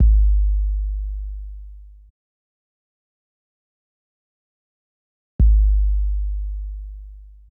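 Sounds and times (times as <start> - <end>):
kick drum: 0.0 - 2.1, 5.4 - 7.5.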